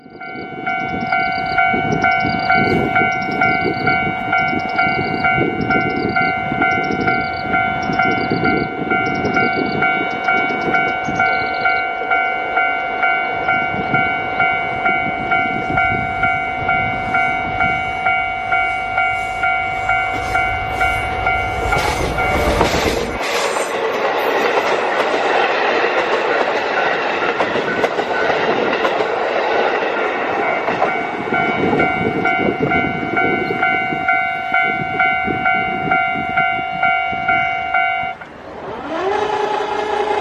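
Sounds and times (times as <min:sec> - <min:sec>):
railroad crossing alarm clanging: 0:00.0 - 0:38.4
sightseeing train rumbling past: 0:00.0 - 0:40.1.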